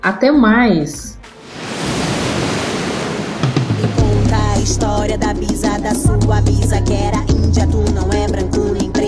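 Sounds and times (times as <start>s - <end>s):
speech: 0.0s - 1.2s, 4.6s - 9.0s
brief bright water splashes: 1.3s - 4.9s
tide waves washing onto a shoreline: 1.4s - 4.9s.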